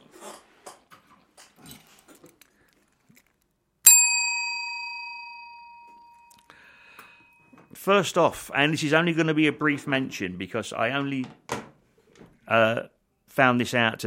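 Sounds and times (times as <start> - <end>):
rustling handling noises: 0.1 - 3.6
bell ringing: 3.9 - 7.6
speech: 7.8 - 11.4, 12.5 - 14.0.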